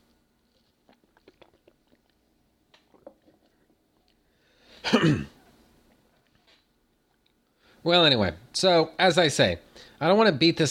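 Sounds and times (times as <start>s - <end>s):
slurping gulp of Dr. Pepper: 0.0s - 4.4s
mouth clicks: 0.5s - 4.2s
speech: 4.8s - 5.3s, 7.8s - 10.6s.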